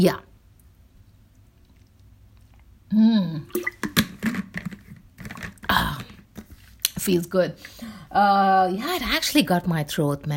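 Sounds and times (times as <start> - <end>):
speech: 0.0 - 0.3, 2.9 - 3.8, 7.0 - 10.3
person sipping water with slurps and swallowing: 1.0 - 6.9.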